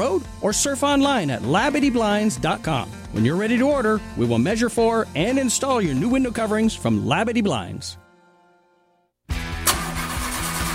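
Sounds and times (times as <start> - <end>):
speech: 0.0 - 8.0
car engine in need of repair cranking and starting: 9.4 - 10.7.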